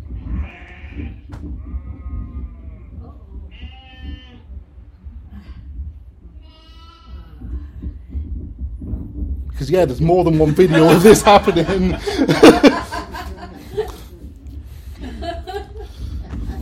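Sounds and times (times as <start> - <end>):
steady low rumble: 0.0 - 16.5
several sheep bleating: 0.2 - 2.4, 3.5 - 4.5
speech: 1.0 - 1.8, 9.6 - 12.7
laughter: 10.3 - 16.5.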